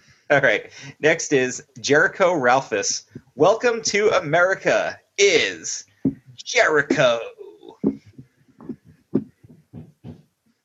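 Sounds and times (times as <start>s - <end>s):
speech: 0.3s - 7.4s
dull knocks on a hard surface: 7.8s - 10.2s.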